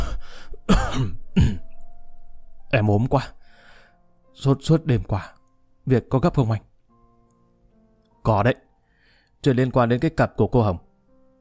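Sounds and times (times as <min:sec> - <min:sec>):
person faking a cough while covering a phone: 0:00.7 - 0:01.6
speech: 0:02.7 - 0:03.4, 0:04.4 - 0:06.7, 0:08.2 - 0:08.6, 0:09.4 - 0:10.9
breathy sound: 0:03.4 - 0:04.1, 0:08.8 - 0:09.4.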